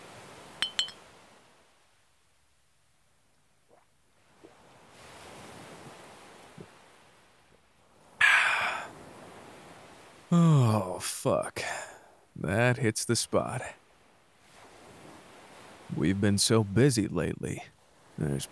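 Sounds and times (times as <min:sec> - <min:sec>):
glasses clinking in a toast: 0:00.6 - 0:01.0
small knocks: 0:00.6 - 0:01.0
soft airy noise: 0:00.6 - 0:01.0, 0:08.2 - 0:08.9
speech: 0:11.2 - 0:11.7, 0:12.4 - 0:13.8, 0:15.9 - 0:18.4.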